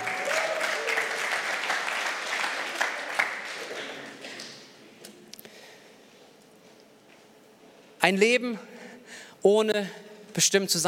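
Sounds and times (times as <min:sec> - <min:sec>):
audience applause: 0:00.0 - 0:04.7
speech: 0:08.0 - 0:08.7, 0:09.4 - 0:10.8.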